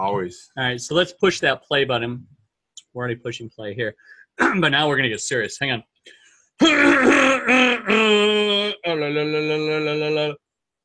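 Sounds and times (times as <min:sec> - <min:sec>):
speech: 0:00.0 - 0:10.4
person clearing throat before a performance: 0:04.4 - 0:04.7, 0:06.6 - 0:08.5.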